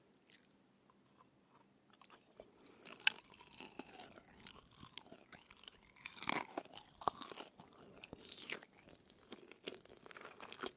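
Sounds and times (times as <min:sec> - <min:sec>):
wet chewing and crunching of chicken feet: 0:00.2 - 0:00.6, 0:01.2 - 0:10.7.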